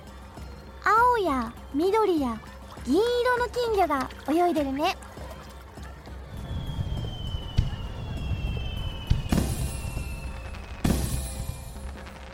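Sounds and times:
speech: 1.2 - 5.1
firework whistling as it climbs: 6.3 - 12.3.

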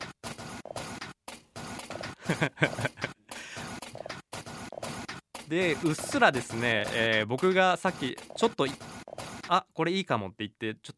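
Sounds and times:
looped beat built from chopped mechanical noises: 0.0 - 9.6
laughter: 2.2 - 3.6
speech: 2.3 - 3.0, 5.5 - 8.9, 9.5 - 10.9.

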